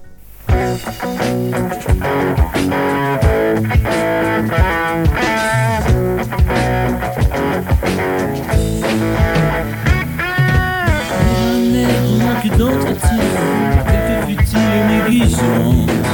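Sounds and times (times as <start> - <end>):
instrumental music from an old cassette: 0.0 - 16.1.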